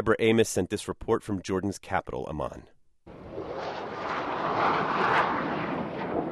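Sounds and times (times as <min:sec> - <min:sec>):
speech: 0:00.0 - 0:02.8
fighter jets roaring overhead: 0:03.1 - 0:06.3.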